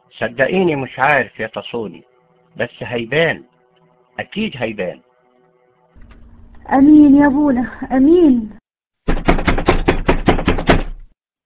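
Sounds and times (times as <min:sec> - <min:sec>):
speech: 0:00.1 - 0:03.5, 0:04.2 - 0:05.1, 0:06.7 - 0:08.6
rapid firm knocking on a door: 0:09.0 - 0:11.1.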